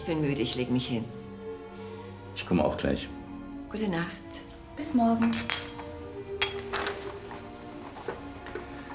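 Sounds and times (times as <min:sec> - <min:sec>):
speech: 0:00.0 - 0:01.2, 0:02.4 - 0:05.6
glasses clinking together in a toast: 0:05.1 - 0:07.3, 0:08.5 - 0:08.9.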